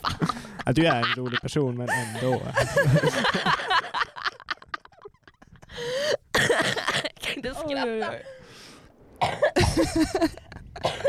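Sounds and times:
laughter: 0.0 - 6.0, 6.6 - 8.4, 9.6 - 11.0
speech: 0.7 - 4.0, 7.7 - 8.4, 9.2 - 10.4
person coughing: 6.4 - 7.6, 9.2 - 9.9, 10.8 - 11.0.

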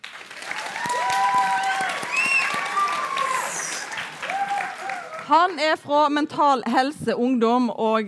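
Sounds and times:
audience applause: 0.0 - 5.6
cheers: 0.2 - 5.3
sharp whistles: 2.1 - 2.6
speech: 5.3 - 8.0.

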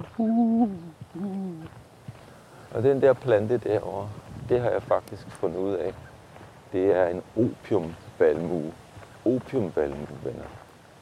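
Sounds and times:
dove cooing: 0.0 - 1.8
speech: 0.2 - 1.8, 2.7 - 6.1, 6.7 - 10.6.

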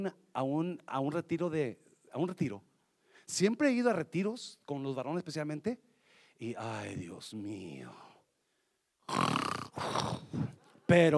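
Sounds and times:
speech: 0.0 - 2.7, 3.3 - 8.1, 10.0 - 11.1
person mimicking snoring: 9.0 - 10.6.

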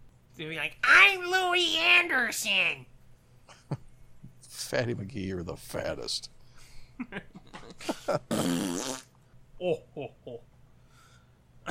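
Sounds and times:
speech: 0.4 - 2.9, 4.6 - 6.4, 7.0 - 10.5
voice imitating a fart with sputtering blurts and wet raspberry: 7.7 - 9.2.

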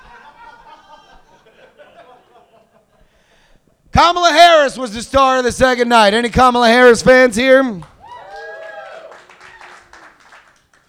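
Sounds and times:
laughter: 0.0 - 3.1
speech: 4.0 - 7.9
live audience in California clapping and cheering: 7.8 - 10.8
loud rising whoop: 8.0 - 10.1.

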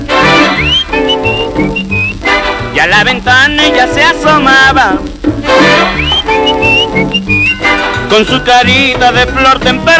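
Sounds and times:
loud musical backing in a song: 0.0 - 9.9
man whistling a short melody in a song: 0.4 - 2.2, 5.7 - 7.8
speech: 3.0 - 6.7, 8.1 - 9.9.

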